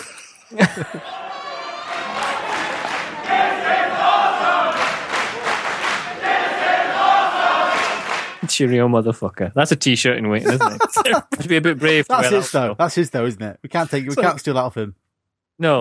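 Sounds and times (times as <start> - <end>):
speech: 0.5 - 1.2, 8.5 - 15.0, 15.6 - 15.7
laughter: 0.5 - 2.7, 10.4 - 12.7, 13.7 - 14.5
large crowd of Japanese people chanting in unison: 0.8 - 8.4.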